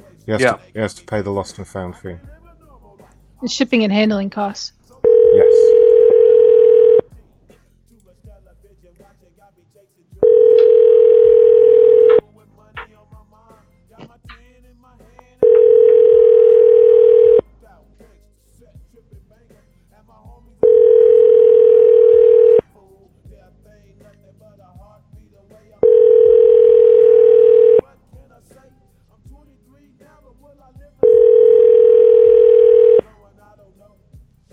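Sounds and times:
speech: 0.2 - 2.4, 3.4 - 4.8
ringback tone of an outgoing phone call: 5.0 - 7.1, 10.2 - 12.2, 15.4 - 17.4, 20.6 - 22.6, 25.8 - 27.8, 31.0 - 33.0.

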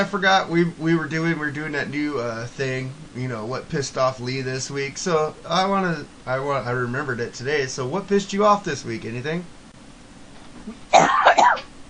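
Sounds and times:
speech: 0.0 - 9.6
faint room noise: 0.0 - 11.8
harsh chesty coughs: 10.9 - 11.7.

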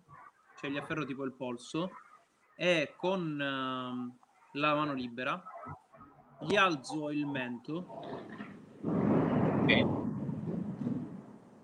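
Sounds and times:
speech: 0.6 - 5.8, 6.4 - 9.0
distant thunder rumbling: 7.9 - 11.6.

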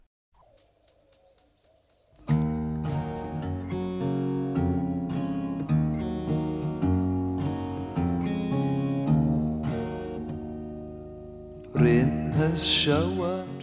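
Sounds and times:
high sharp bird tweets: 0.4 - 2.3, 6.0 - 10.0
music: 2.2 - 13.6
speech: 11.8 - 13.5.

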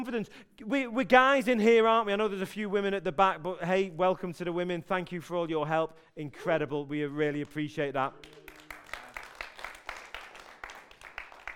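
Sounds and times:
speech: 0.0 - 8.4
crowd applauding a speaker at a talk: 8.2 - 11.5.

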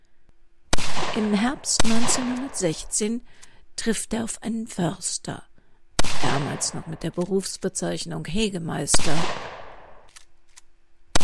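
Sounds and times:
gunshots: 0.7 - 2.9, 6.0 - 7.0, 8.9 - 10.1
speech: 1.2 - 5.5, 6.2 - 9.6.

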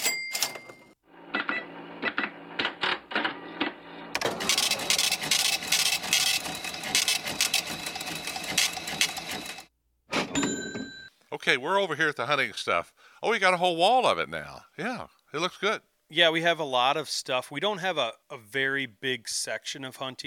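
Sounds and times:
cash register clacking: 0.0 - 11.0
cash register printing: 0.4 - 9.7
speech: 11.5 - 20.2.

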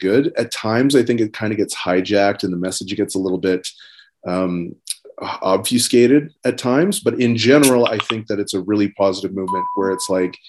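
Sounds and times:
speech: 0.0 - 10.4
phone notification chime: 9.5 - 10.2.

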